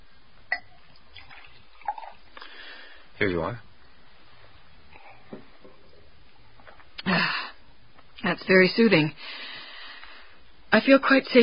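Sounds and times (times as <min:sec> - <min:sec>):
water poured from a carafe into a glass: 0:00.6 - 0:02.4
speech: 0:03.2 - 0:03.7, 0:08.4 - 0:09.4, 0:10.7 - 0:11.4.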